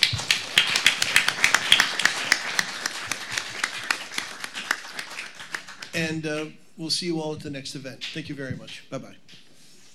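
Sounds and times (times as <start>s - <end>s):
audience applauding: 0.0s - 6.2s
speech: 6.0s - 9.4s.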